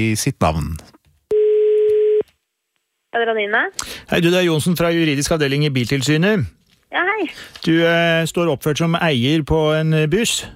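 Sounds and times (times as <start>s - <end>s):
speech: 0.0s - 0.9s, 3.1s - 10.5s
telephone ring tone on an outgoing call: 1.3s - 2.2s.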